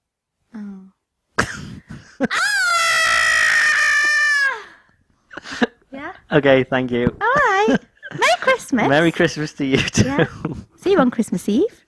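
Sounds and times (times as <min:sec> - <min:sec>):
speech: 0:02.2 - 0:02.4, 0:06.3 - 0:11.8
person imitating a shocked child's scream: 0:02.2 - 0:04.8.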